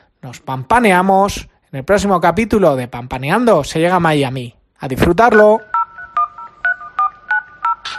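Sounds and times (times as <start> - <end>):
speech: 0.2 - 5.7
telephone keypad dual-pitched tones with faint clicks: 5.6 - 7.9.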